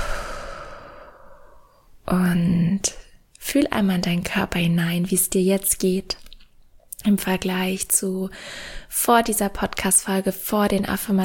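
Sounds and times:
long soft breathy exhale during a guided relaxation exercise: 0:00.0 - 0:01.8
speech: 0:02.1 - 0:06.3, 0:07.0 - 0:11.2.

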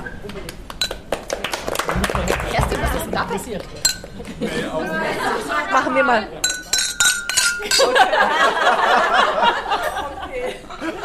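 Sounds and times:
small group chattering: 0:01.5 - 0:11.0
speech: 0:03.1 - 0:06.5, 0:07.6 - 0:11.0
glasses clinking in a toast: 0:03.7 - 0:04.2, 0:06.4 - 0:08.2
laughter: 0:04.2 - 0:05.7, 0:07.6 - 0:11.0.

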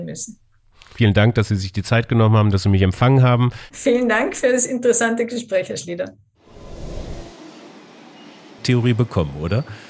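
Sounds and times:
speech: 0:00.0 - 0:06.3, 0:08.6 - 0:09.8
railway station ambience in Dessau: 0:07.3 - 0:09.8.

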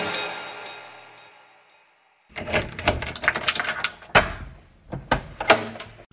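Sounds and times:
holiday apartment door creaking open with rattling handle: 0:02.3 - 0:06.0.

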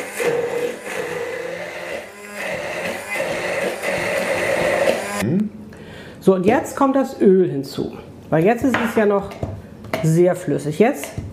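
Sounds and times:
old hand blender puréeing food: 0:00.0 - 0:05.2
speech: 0:06.3 - 0:11.2.

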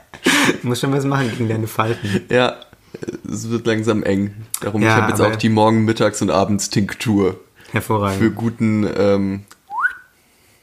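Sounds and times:
laughter: 0:00.0 - 0:02.4
speech: 0:00.5 - 0:09.5
suggestive human whistle into the microphone: 0:09.7 - 0:10.1.

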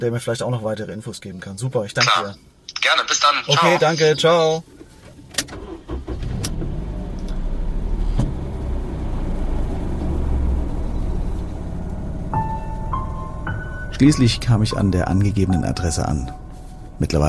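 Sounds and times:
speech: 0:00.0 - 0:04.8, 0:14.0 - 0:16.4, 0:17.0 - 0:17.2
car engine humming while driving: 0:05.6 - 0:17.2.

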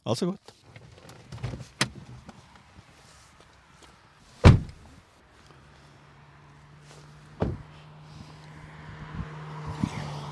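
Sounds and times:
speech: 0:00.0 - 0:00.6
car driving past at a roadside: 0:02.1 - 0:10.3
thuds and clunks: 0:04.4 - 0:04.8, 0:07.4 - 0:07.8.

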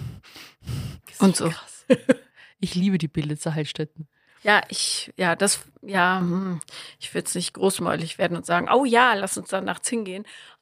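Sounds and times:
voice imitating heavy creepy breathing of an actor: 0:00.0 - 0:01.2
speech: 0:01.2 - 0:10.5
laughter: 0:01.9 - 0:02.2.

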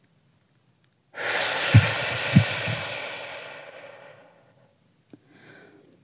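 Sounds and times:
deep inhale through the nose during a breathing exercise: 0:01.2 - 0:04.6, 0:05.3 - 0:05.9
faint breath: 0:01.2 - 0:06.0.

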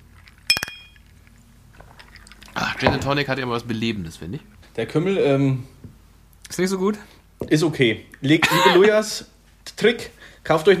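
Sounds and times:
glasses clinking together in a toast: 0:00.5 - 0:01.1
speech: 0:02.8 - 0:05.8, 0:06.5 - 0:10.7.

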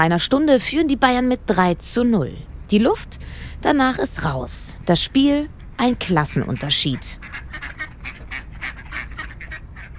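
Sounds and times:
speech: 0:00.0 - 0:07.7
low rumbling background: 0:00.0 - 0:09.9
wild ducks quacking: 0:05.6 - 0:09.9.

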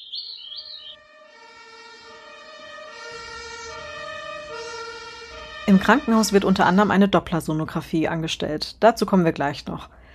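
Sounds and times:
ambulance siren electronic wail: 0:00.0 - 0:06.9
speech: 0:05.7 - 0:10.0.

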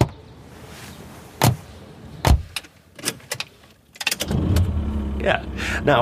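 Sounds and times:
solid thuds inside a car: 0:02.2 - 0:02.6
car engine cranking and catching: 0:03.0 - 0:06.0
speech: 0:05.2 - 0:06.0.

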